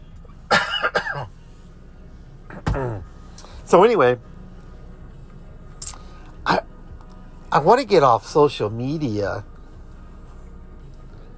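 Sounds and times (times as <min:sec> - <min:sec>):
person coughing: 0:00.5 - 0:01.3, 0:02.5 - 0:03.1, 0:06.4 - 0:06.7
speech: 0:03.7 - 0:04.3, 0:07.6 - 0:09.5.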